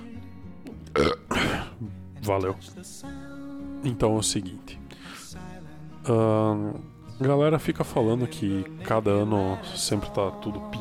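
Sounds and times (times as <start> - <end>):
loud drawn-out belch with rough gurgling texture: 0.8 - 1.9
small grunt: 0.9 - 1.9
speech: 1.8 - 10.7.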